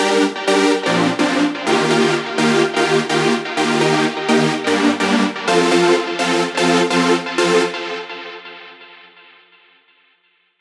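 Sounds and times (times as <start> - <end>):
rhythmic chords of big room progressive house music: 0.0 - 9.5.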